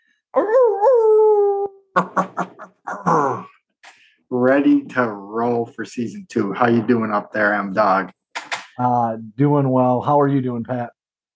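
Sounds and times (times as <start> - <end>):
person imitating a dog howl: 0.4 - 2.0
speech: 4.6 - 8.2, 8.8 - 11.0.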